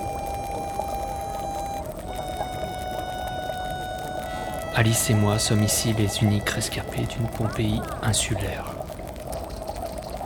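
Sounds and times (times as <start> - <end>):
faint sustained tonal hum: 0.0 - 8.0
thermal hot spring water bubbling and gurgling: 0.0 - 10.2
speech: 4.8 - 8.7.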